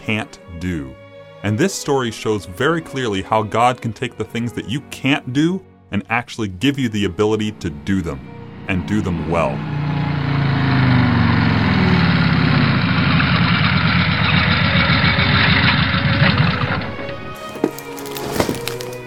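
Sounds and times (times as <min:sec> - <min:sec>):
speech: 0:00.1 - 0:10.1
motorcycle engine idling: 0:07.3 - 0:17.2.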